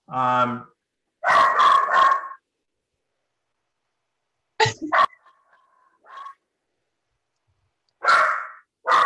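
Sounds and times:
schnoodle dogs barking: 1.2s - 2.4s, 4.9s - 5.4s, 6.0s - 6.4s, 8.0s - 9.0s.

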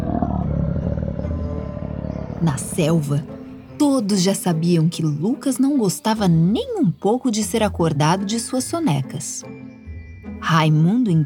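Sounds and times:
lion roaring: 0.0s - 2.9s
speech: 2.4s - 9.8s, 10.4s - 11.2s.

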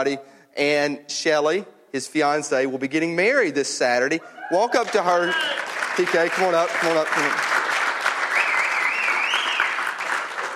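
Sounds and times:
speech: 0.0s - 7.6s
audience clapping and applauding: 4.7s - 10.5s.

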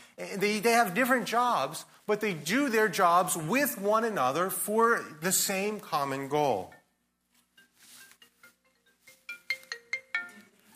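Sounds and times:
speech: 0.2s - 6.8s
cell phone ringtone with bright electronic melody: 7.6s - 10.7s.

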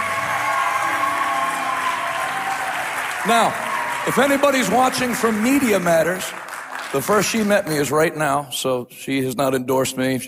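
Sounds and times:
people cheering: 0.0s - 8.0s
crowd at a church gathering clapping: 0.0s - 8.2s
speech: 3.2s - 10.2s.

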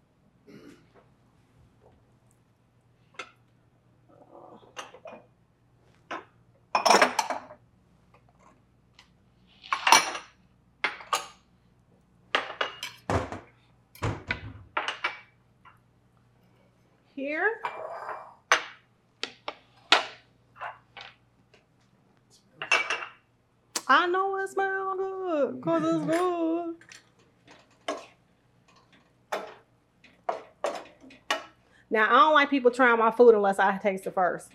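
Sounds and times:
low steady hum: 0.0s - 34.5s
dishes and cutlery clinking as they're grabbed: 4.7s - 5.3s, 6.1s - 7.6s, 9.6s - 11.4s, 12.4s - 14.2s, 22.6s - 23.2s, 25.8s - 31.6s
speech: 25.4s - 26.6s, 32.0s - 34.5s.

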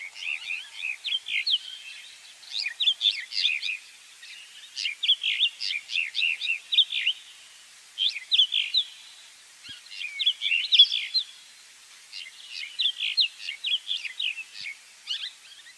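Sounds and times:
mountain wheatear song in the Namib Desert: 0.0s - 7.4s, 8.0s - 11.4s, 12.1s - 15.7s.

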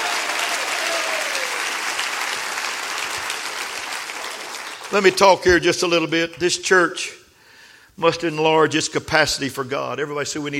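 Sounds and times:
large group applauding: 0.0s - 5.5s
speech: 4.9s - 7.2s, 8.0s - 10.5s.

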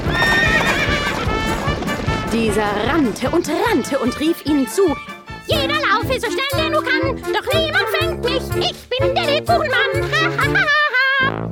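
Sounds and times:
horse whinny: 0.0s - 1.2s
pony hooves galloping: 0.0s - 8.7s
speech: 2.4s - 11.5s
laughter: 9.7s - 11.3s.

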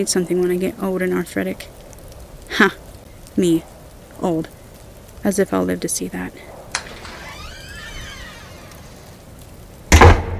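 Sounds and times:
speech: 0.0s - 1.8s, 2.5s - 2.8s, 3.4s - 4.6s, 5.2s - 6.5s
apartment door slamming shut: 6.8s - 9.0s.

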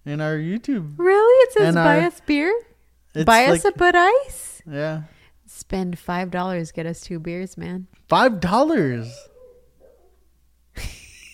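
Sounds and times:
speech: 0.0s - 9.3s
background hum: 0.0s - 11.3s
dog barking: 9.0s - 10.3s.

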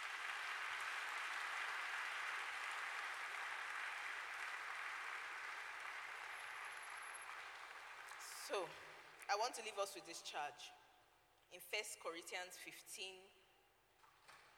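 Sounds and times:
audience applauding in a large room: 0.0s - 8.8s
speech: 8.5s - 10.8s, 11.5s - 13.4s.

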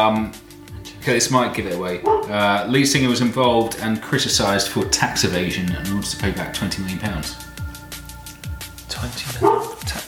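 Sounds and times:
speech: 0.0s - 0.4s, 1.0s - 7.6s, 9.0s - 10.0s
dog yipping: 2.0s - 2.3s, 9.4s - 9.8s
dog barking: 2.0s - 2.4s, 9.4s - 9.8s.

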